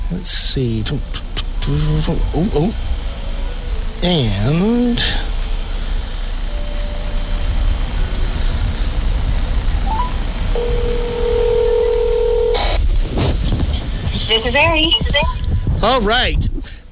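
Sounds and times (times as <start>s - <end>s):
steady hiss: 0.0s - 15.0s
speech: 0.1s - 3.0s, 4.0s - 5.3s, 14.2s - 16.5s
sustained two-pitch telephone tone: 10.0s - 12.8s.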